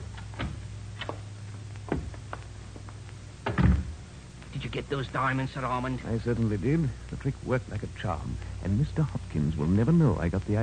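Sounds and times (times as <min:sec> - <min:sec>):
door shutting with a heavy thud: 0:03.4 - 0:04.0
speech: 0:04.8 - 0:10.6.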